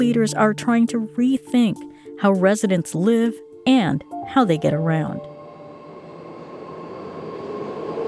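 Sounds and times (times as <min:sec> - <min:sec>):
speech: 0:00.0 - 0:05.3
faint tonal whine: 0:04.2 - 0:08.0
BART rail train humming and rumbling at a station in San Jose: 0:04.6 - 0:08.0.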